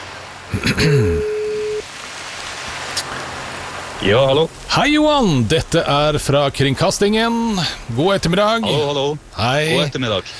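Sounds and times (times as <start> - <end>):
speech: 0.5 - 1.4, 4.0 - 10.3
telephone ringback tone: 1.1 - 1.8.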